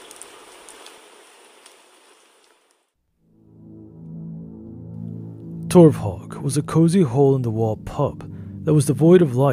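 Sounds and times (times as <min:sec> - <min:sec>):
steady rain downpour: 0:00.0 - 0:02.9
low humming tonal drone: 0:03.2 - 0:09.5
speech: 0:05.7 - 0:09.5.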